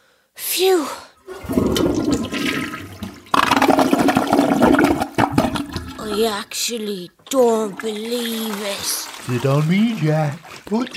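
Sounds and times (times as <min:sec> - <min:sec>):
speech: 0:00.6 - 0:02.3, 0:06.1 - 0:10.9
toilet flushing in a bathroom: 0:01.2 - 0:06.3, 0:08.2 - 0:10.9.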